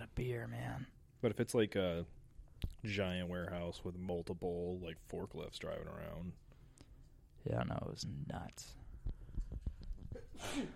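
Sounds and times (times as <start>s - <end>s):
speech: 0.2s - 6.4s, 7.4s - 8.8s, 10.2s - 10.7s
person sneezing: 10.1s - 10.7s.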